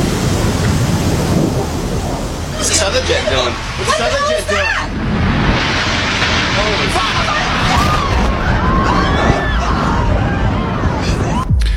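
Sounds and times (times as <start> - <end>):
heavy rumbling explosions at a building: 0.0 - 11.7
voices shouting and crying out: 2.4 - 11.6.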